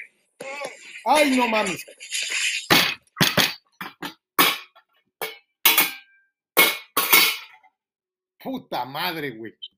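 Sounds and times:
engine clattering crashes with bright ringing tails: 0:00.9 - 0:07.7
speech: 0:01.0 - 0:01.9, 0:08.4 - 0:09.7.

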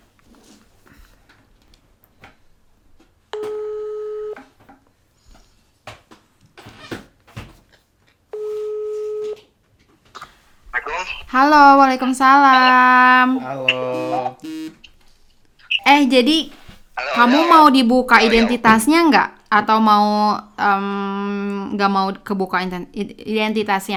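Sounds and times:
outgoing phone call ringback tone: 0:03.4 - 0:04.4, 0:08.4 - 0:09.4, 0:13.8 - 0:14.8
speech: 0:11.4 - 0:14.4, 0:15.9 - 0:16.6, 0:17.2 - 0:23.9.

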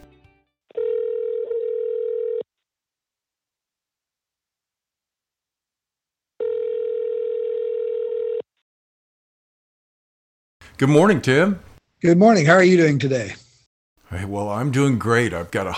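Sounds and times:
telephone line tone as a call is placed: 0:00.7 - 0:02.4, 0:06.4 - 0:08.5
speech: 0:10.8 - 0:13.4, 0:14.1 - 0:15.7.

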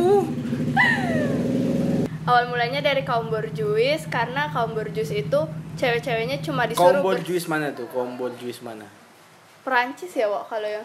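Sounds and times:
loud motorcycle engine passing by: 0:00.0 - 0:07.6
speech: 0:02.3 - 0:09.0, 0:09.6 - 0:10.8.

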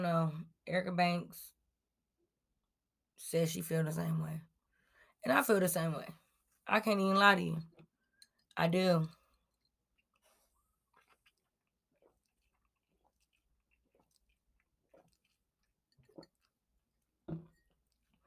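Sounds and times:
speech: 0:00.0 - 0:01.6, 0:03.2 - 0:04.5, 0:05.2 - 0:07.7, 0:08.6 - 0:09.2
wet mouth sounds: 0:10.0 - 0:16.6
person gulping a shot of tequila: 0:10.2 - 0:18.2.

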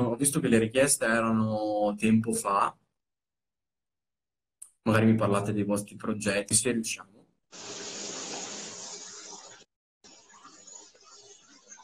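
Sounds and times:
speech: 0:00.2 - 0:02.8, 0:04.8 - 0:07.8
shower running with hissing spray of water: 0:07.5 - 0:09.6.

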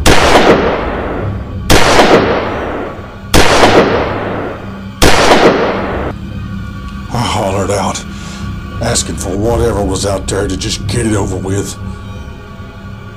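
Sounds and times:
loud booming gunshots: 0:00.0 - 0:06.1
speech: 0:08.9 - 0:12.0.

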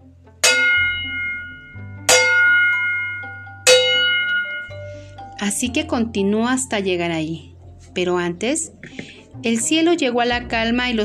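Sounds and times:
distant village church-style bells tolling: 0:00.4 - 0:05.0
speech: 0:05.4 - 0:11.0.

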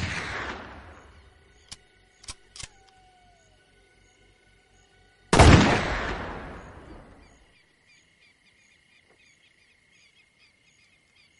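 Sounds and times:
shotgun blasts fired into the ground: 0:00.0 - 0:01.2, 0:05.3 - 0:07.1.

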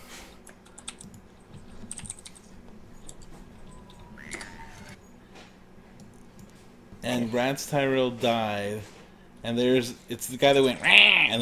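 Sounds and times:
faint hum: 0:00.0 - 0:11.4
clicky typing on a mechanical keyboard: 0:00.5 - 0:02.4
speech: 0:07.1 - 0:11.4.

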